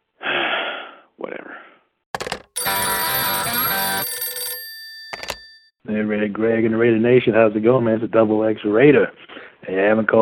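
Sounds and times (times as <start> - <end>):
telephone ringing: 2.2 - 5.7
speech: 6.0 - 10.2.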